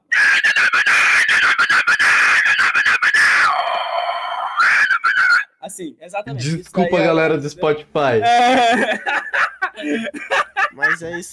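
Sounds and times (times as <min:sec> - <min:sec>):
person imitating a vocalist screaming into a microphone: 0:00.1 - 0:05.5
speech: 0:05.8 - 0:09.2, 0:09.8 - 0:11.3
laughter: 0:08.2 - 0:11.3.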